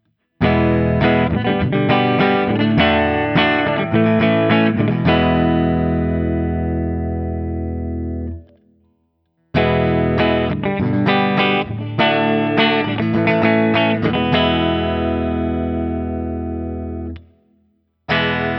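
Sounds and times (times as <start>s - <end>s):
1994 Guild S-100 Polara electric guitar: 0.3s - 8.8s, 9.5s - 17.4s, 18.1s - 18.5s.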